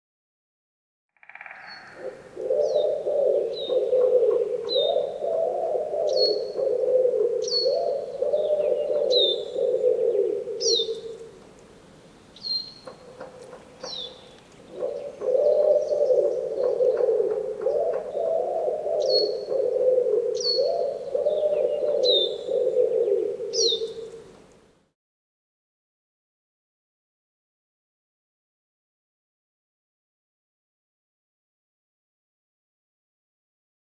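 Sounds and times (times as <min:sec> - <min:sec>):
wood pigeon: 0:01.4 - 0:24.6.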